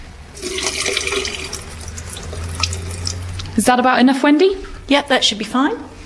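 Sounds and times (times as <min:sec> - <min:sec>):
water pouring and splashing into a sink: 0:00.3 - 0:03.6
speech: 0:03.6 - 0:05.9.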